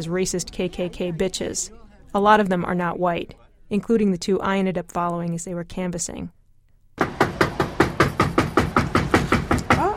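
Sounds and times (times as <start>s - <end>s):
speech: 0.0s - 6.4s
rapid firm knocking on a door: 7.0s - 9.9s.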